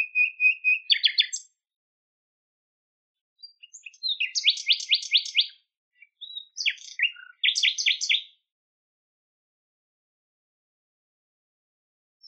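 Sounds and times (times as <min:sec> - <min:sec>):
common nightingale singing: 0:00.0 - 0:01.6, 0:03.4 - 0:08.4.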